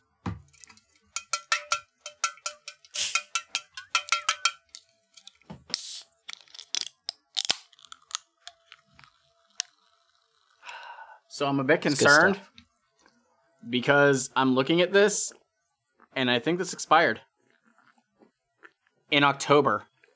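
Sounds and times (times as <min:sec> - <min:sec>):
metallic clicks and ringing taps of cola cans being handled: 0:00.4 - 0:05.4
cola cans cracking open: 0:00.4 - 0:10.8
hissing bursts from opened cola cans: 0:02.9 - 0:03.6, 0:05.7 - 0:06.1
speech: 0:11.4 - 0:12.5, 0:13.7 - 0:15.4, 0:16.2 - 0:17.3, 0:19.1 - 0:19.9.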